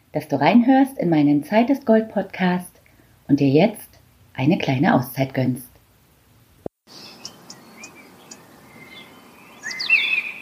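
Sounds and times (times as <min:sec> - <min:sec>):
speech: 0:00.1 - 0:02.7, 0:03.3 - 0:05.7
birds chirping and singing outdoors in the morning: 0:06.9 - 0:10.3.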